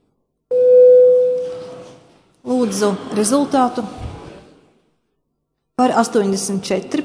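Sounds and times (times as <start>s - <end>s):
parliament voting electronic bell tone: 0.5s - 1.6s
speech: 2.6s - 4.1s, 5.8s - 7.0s.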